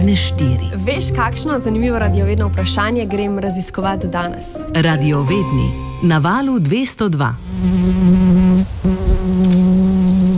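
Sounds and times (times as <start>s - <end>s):
speech: 0.1s - 9.1s
fly buzzing: 5.7s - 10.3s.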